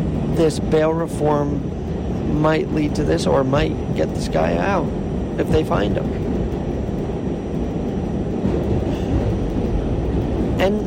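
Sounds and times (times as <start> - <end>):
subway train rumbling along the rails: 0.0 - 10.8
speech: 0.4 - 6.0.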